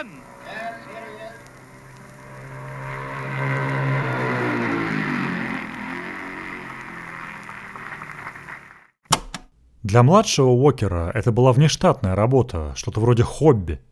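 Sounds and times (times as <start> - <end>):
speech: 0.0 - 0.4, 9.9 - 13.9
racing motorcycle speeding down the straight toward the grandstand: 0.0 - 9.0
sharp knock: 9.1 - 9.5.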